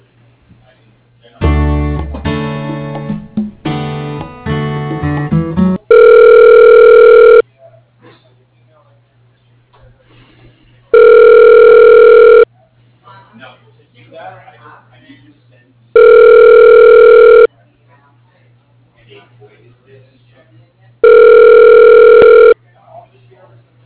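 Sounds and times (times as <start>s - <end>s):
telephone ringback tone while a call is transferred: 5.9s - 7.4s, 10.9s - 12.5s, 16.0s - 17.5s, 21.0s - 22.6s.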